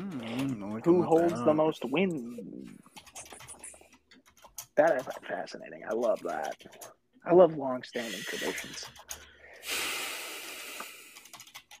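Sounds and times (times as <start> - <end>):
speech: 0.6 - 3.0, 4.8 - 9.2
typing on a computer keyboard: 2.9 - 7.0, 8.7 - 9.3, 11.1 - 11.7
breathy hiss: 8.0 - 8.8, 9.6 - 11.3.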